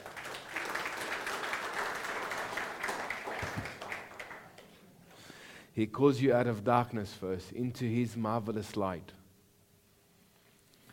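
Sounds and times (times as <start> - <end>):
crowd applauding: 0.0 - 4.8
speech: 5.8 - 9.2.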